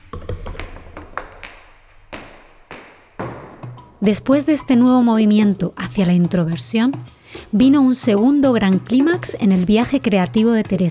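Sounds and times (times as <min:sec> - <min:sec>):
billiard balls clicking together: 0:00.0 - 0:04.0
speech: 0:04.0 - 0:10.8.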